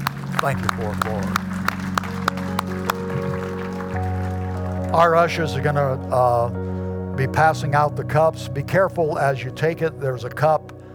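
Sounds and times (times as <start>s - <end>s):
group clapping in a steady rhythm: 0.0s - 5.5s
speech: 0.4s - 1.6s, 4.9s - 10.7s.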